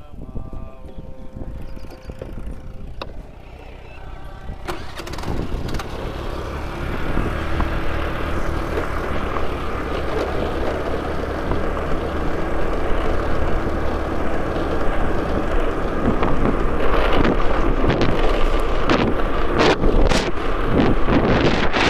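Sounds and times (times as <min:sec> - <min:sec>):
car engine cranking, starting and idling: 0:01.3 - 0:21.8.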